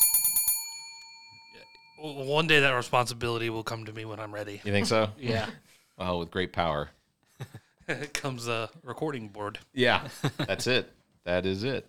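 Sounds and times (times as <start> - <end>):
bright metallic bell being struck: 0.0 - 2.9
speech: 2.0 - 11.8.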